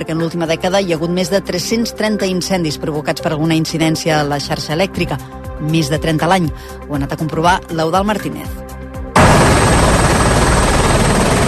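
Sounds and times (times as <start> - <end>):
speech: 0.0 - 8.6
helicopter rotor wash and engine whine: 9.2 - 11.4.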